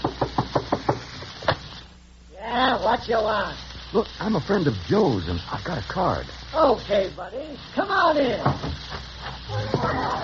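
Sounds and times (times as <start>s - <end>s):
firm knocking on a wooden door: 0.0s - 1.0s
speech: 2.8s - 10.0s.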